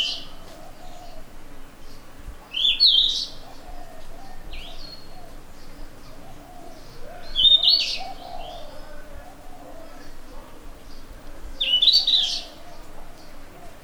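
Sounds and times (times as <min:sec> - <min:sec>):
dove cooing low: 0:00.0 - 0:01.5, 0:02.4 - 0:13.8
yellow-rumped flycatcher Ficedula zanthopygia singing high warbled phrases: 0:02.5 - 0:13.8.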